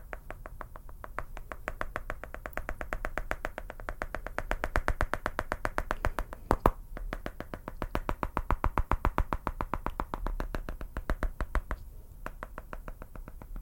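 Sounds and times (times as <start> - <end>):
fast crisp tapping: 0.0 - 13.6.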